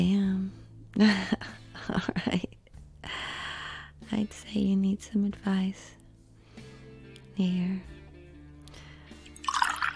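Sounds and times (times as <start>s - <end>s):
speech: 1.0s - 2.6s, 4.1s - 6.0s, 7.4s - 7.9s
tequila shot pouring into a glass: 9.3s - 9.9s.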